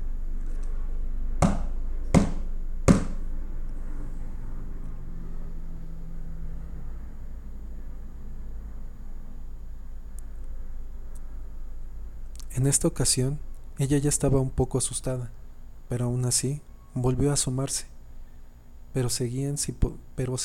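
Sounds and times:
quiet rumble: 0.0 - 20.4
steady low hum: 0.0 - 20.4
sharp knocks on a door: 1.4 - 3.2
speech: 12.6 - 17.9, 18.9 - 20.4.

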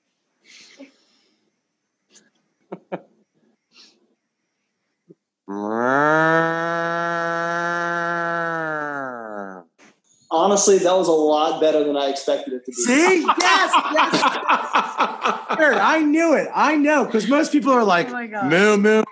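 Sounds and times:
laughter: 2.7 - 3.1, 12.6 - 19.1
person imitating a cow mooing with a low throaty voice: 5.5 - 9.7
small mouth clicks: 5.5 - 10.3
speech: 10.6 - 19.1.

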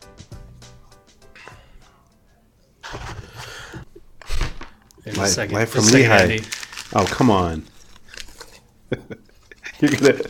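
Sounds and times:
loud snack bag rustling: 4.2 - 8.6, 9.3 - 10.2
speech: 5.1 - 7.7, 9.8 - 10.2.

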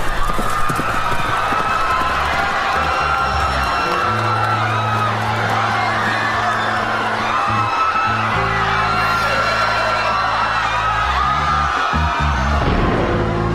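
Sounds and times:
cavalry horses' hooves clattering: 0.0 - 4.0
loud chaotic crowd yelling and whooping: 0.0 - 13.5.

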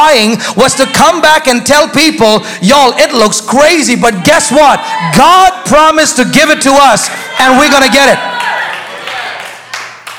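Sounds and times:
speech: 0.0 - 8.5
light scattered golf claps from audience: 7.3 - 10.1.

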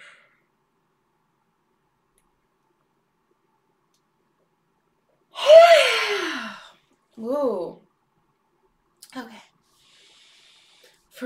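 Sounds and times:
long breathy voiced yawn from a person: 5.4 - 6.7
speech: 7.2 - 7.8.

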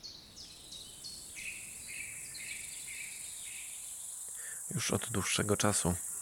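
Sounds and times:
constant hiss: 0.0 - 6.1
meadow insects chirping and buzzing: 0.0 - 6.1
speech: 4.7 - 6.1.

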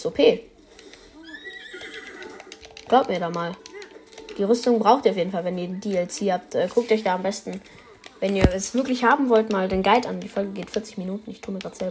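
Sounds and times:
speech: 0.0 - 0.5, 2.9 - 3.6, 4.3 - 11.8
horse neighing: 1.2 - 2.7.

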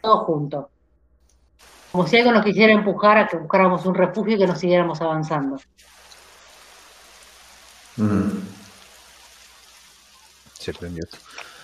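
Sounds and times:
speech: 0.0 - 0.8, 1.9 - 5.9, 8.0 - 8.5, 10.6 - 11.5
steady soft rain: 1.6 - 11.6
person murmuring: 8.0 - 8.7.

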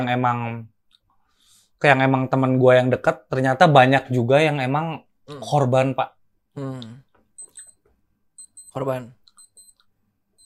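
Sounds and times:
speech: 0.0 - 0.7, 1.8 - 7.0, 8.8 - 9.2
clock sounding high thin electronic beeps: 7.4 - 7.8, 8.4 - 10.4.

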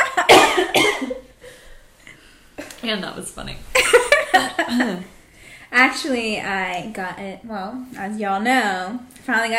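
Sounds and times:
harsh fit of coughing: 0.2 - 1.2
speech: 2.9 - 3.8, 4.7 - 9.5.

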